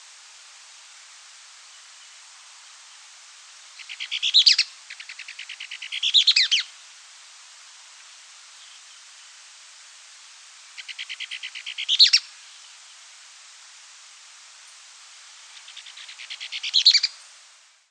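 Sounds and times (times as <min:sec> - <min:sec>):
bird song: 0:03.8 - 0:06.7, 0:10.8 - 0:13.0, 0:15.5 - 0:17.3
speech: 0:04.0 - 0:04.5.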